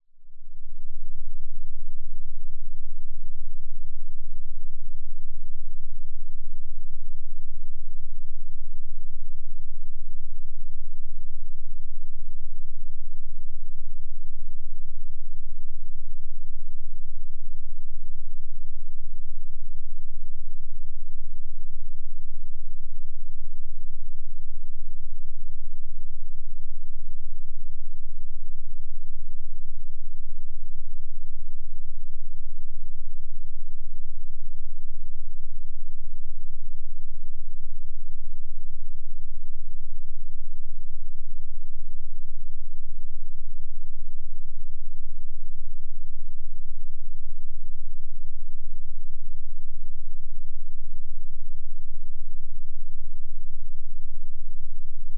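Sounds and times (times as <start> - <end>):
subcontra tone at 8 Hz: 0.0 - 55.1.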